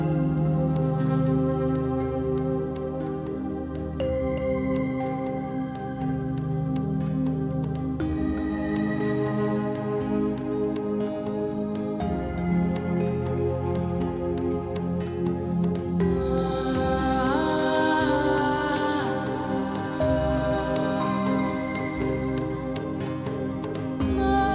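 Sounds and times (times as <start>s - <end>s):
freespin ambient music: 0.0s - 24.5s.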